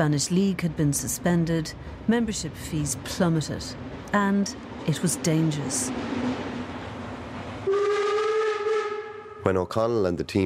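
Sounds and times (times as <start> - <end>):
speech: 0.0 - 6.4, 9.5 - 10.4
train rumbling on rails: 0.0 - 10.3
train whistle: 7.6 - 9.5.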